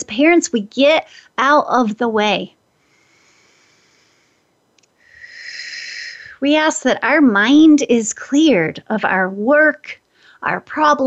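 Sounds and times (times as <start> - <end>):
speech: 0.0 - 2.6, 6.4 - 11.0
forceful breath in during energy-healing breathing exercise: 2.8 - 6.4
faint clicks: 4.7 - 5.0.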